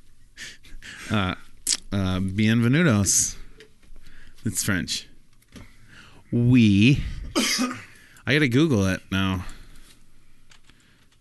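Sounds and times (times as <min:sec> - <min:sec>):
speech: 0:01.1 - 0:03.4, 0:04.4 - 0:05.1, 0:06.3 - 0:09.5
typing on a computer keyboard: 0:10.5 - 0:11.2.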